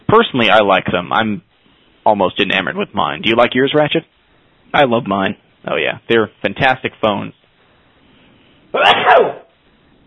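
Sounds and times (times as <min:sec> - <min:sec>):
speech: 0:00.1 - 0:04.1, 0:04.7 - 0:07.4, 0:08.7 - 0:09.4
loud sneeze: 0:08.7 - 0:09.6.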